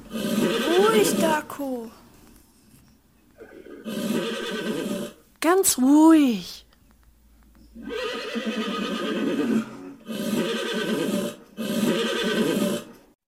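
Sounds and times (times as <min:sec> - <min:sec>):
startled loose horses whinnying: 0:00.0 - 0:01.4, 0:03.4 - 0:05.2, 0:07.8 - 0:13.0
speech: 0:01.0 - 0:02.0, 0:05.4 - 0:06.6.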